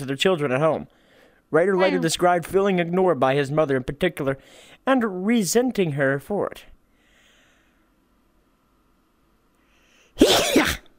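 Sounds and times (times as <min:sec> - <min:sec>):
speech: 0:00.0 - 0:06.7
sneeze: 0:10.2 - 0:10.9.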